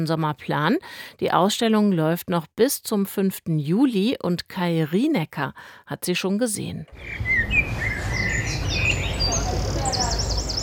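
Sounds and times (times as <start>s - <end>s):
speech: 0.0s - 7.6s
several birds chirping and warbling in a hillside garden with apple trees: 7.0s - 10.6s.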